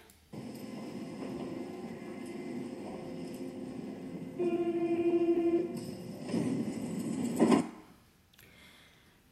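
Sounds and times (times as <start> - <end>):
train in a train simulator video game rumbling: 0.0 - 7.8
train horn in a train simulator video game: 1.3 - 6.1.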